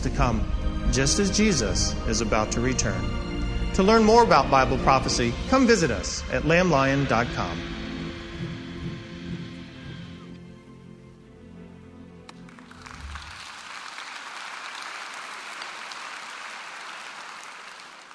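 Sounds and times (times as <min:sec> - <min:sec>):
speech: 0:00.0 - 0:07.8
music: 0:00.0 - 0:18.1
audience clapping: 0:12.3 - 0:18.1.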